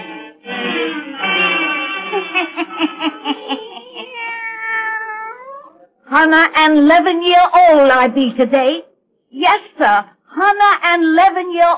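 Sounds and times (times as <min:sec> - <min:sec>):
laughter: 0:00.8 - 0:04.4
black cat meowing: 0:03.8 - 0:05.9
speech: 0:06.2 - 0:11.7.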